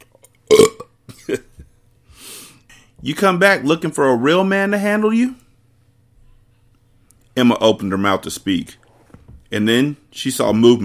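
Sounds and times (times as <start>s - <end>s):
loud throaty burp: 0.5s - 1.0s
speech: 0.6s - 1.5s, 3.0s - 5.4s, 7.4s - 8.8s, 9.5s - 10.8s.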